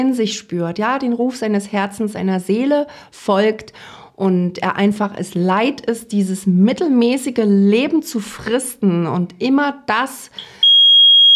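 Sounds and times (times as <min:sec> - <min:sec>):
speech: 0:00.0 - 0:10.6
smoke detector high-pitched beep: 0:10.6 - 0:11.3.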